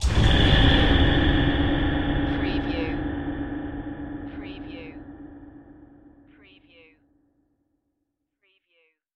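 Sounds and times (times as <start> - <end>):
ghostly hit: 0.0 - 6.3.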